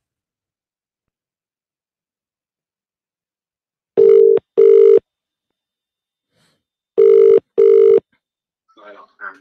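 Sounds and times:
telephone ringing tone in double-burst pattern on a phone-in: 0:04.0 - 0:05.0, 0:07.0 - 0:08.0.

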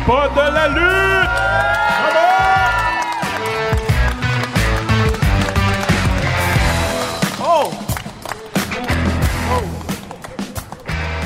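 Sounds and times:
speech: 0:00.1 - 0:02.2
crowd cheering for introduced hosts: 0:00.4 - 0:11.0
people clapping in a crowd: 0:00.9 - 0:11.2.

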